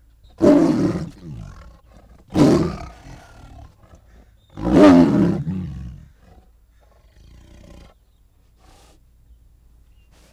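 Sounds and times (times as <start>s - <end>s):
tiger roaring: 0.4s - 8.0s.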